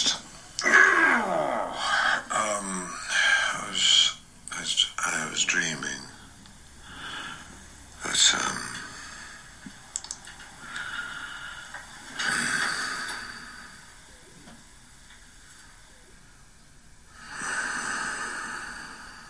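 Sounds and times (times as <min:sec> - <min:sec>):
person breathing heavily while asleep: 0:00.0 - 0:03.6, 0:06.2 - 0:09.8, 0:10.6 - 0:14.4, 0:17.1 - 0:19.2
low noise: 0:00.0 - 0:19.2.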